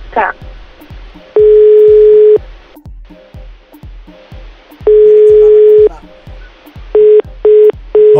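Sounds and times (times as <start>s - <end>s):
ringback tone of an unanswered phone call: 1.4s - 2.4s, 4.9s - 5.9s, 7.0s - 8.1s.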